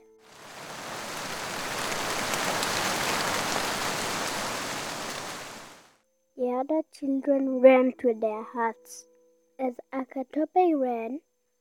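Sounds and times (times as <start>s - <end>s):
heavy rain falling: 0.0s - 6.0s
speech: 6.6s - 11.3s.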